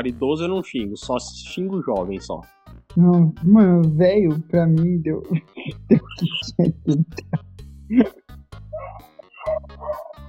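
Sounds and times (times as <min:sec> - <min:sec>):
speech: 0:00.0 - 0:08.2
laughter: 0:05.4 - 0:08.2
dog barking with a whiny yelping edge: 0:08.8 - 0:10.2.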